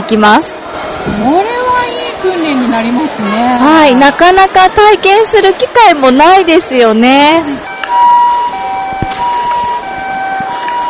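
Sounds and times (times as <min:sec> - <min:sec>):
murmur of noise: 0:00.0 - 0:10.8
speech: 0:00.1 - 0:01.6, 0:02.2 - 0:07.7
ambulance siren wailing in a two-tone high-low pattern: 0:07.6 - 0:10.8.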